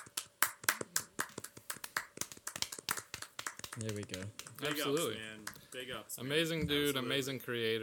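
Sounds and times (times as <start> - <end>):
small group clapping hands in applause: 0.0 - 5.9
speech: 3.8 - 7.8.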